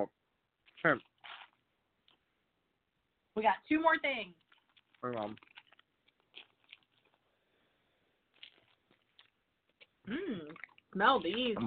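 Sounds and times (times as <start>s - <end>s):
chewing a nougat bar: 0.6s - 2.3s, 4.3s - 7.5s, 8.2s - 11.6s
speech: 0.8s - 1.1s, 3.4s - 4.4s, 5.0s - 5.5s, 10.1s - 11.6s.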